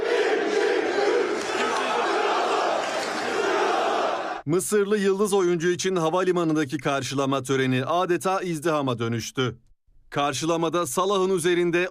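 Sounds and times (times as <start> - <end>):
dense crowd of football fans chanting at an airport welcome: 0.0 - 4.4
speech: 4.5 - 11.8.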